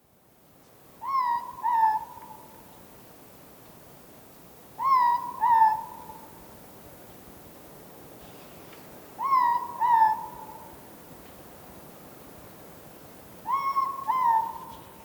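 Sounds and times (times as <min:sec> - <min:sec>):
ruru morepork owl calling: 0:01.0 - 0:02.6, 0:04.8 - 0:06.3, 0:09.2 - 0:10.7, 0:13.4 - 0:15.0.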